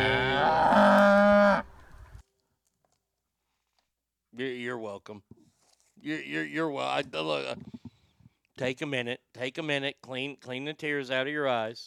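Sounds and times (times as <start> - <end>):
cow mooing: 0.0 - 1.8
speech: 4.4 - 7.8, 8.6 - 11.8.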